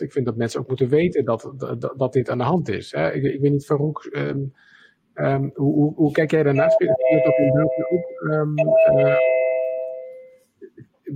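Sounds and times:
speech: 0.0s - 9.3s
doorbell chime: 6.6s - 10.5s.

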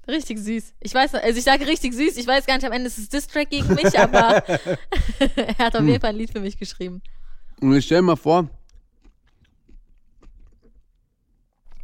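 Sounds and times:
speech: 0.1s - 8.6s
laughter: 3.6s - 6.0s
wet chewing with smacking and crunchy bites: 8.5s - 11.8s.

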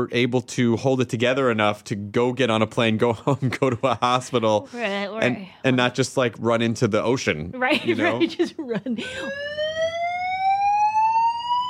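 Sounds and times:
speech: 0.0s - 9.6s
laughter: 3.2s - 4.5s, 7.7s - 9.4s
electronic alarm tone sweeping upward in pitch: 9.0s - 11.6s.

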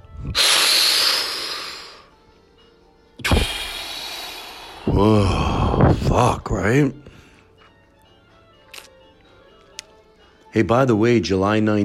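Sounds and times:
forceful inhale: 0.2s - 2.1s, 3.2s - 5.8s
sharp breathy rush of air: 0.2s - 2.1s, 3.2s - 5.0s
speech: 4.9s - 7.1s, 10.6s - 11.8s.

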